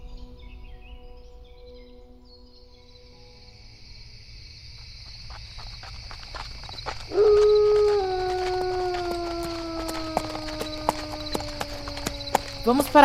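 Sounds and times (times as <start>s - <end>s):
hooves of ridden horses clip-clopping: 4.7s - 13.0s
long loud howl: 6.8s - 13.0s
speech: 12.7s - 13.0s.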